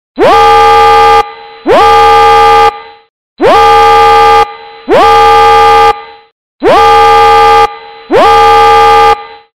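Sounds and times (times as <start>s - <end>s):
siren: 0.2s - 9.5s.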